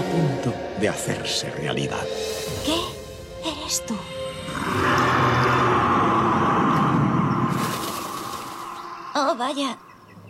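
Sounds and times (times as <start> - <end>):
speech: 0.2 - 5.2, 9.2 - 9.9
deep sustained rumbling roar: 4.4 - 8.5.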